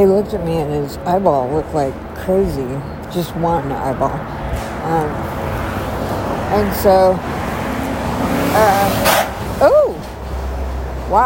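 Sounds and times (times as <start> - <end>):
speech: 0.0 - 7.4, 8.2 - 9.9, 11.1 - 11.2
steady roar of road noise: 0.0 - 11.2
car speeding past: 4.5 - 9.6
car scraping as it speeds past: 7.3 - 10.5.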